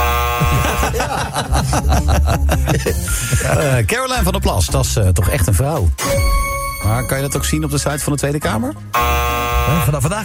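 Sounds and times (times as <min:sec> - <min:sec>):
new harsh buzzing doorbell: 0:00.0 - 0:01.1, 0:08.9 - 0:10.0
laughter: 0:00.4 - 0:03.9
speech: 0:01.4 - 0:10.2.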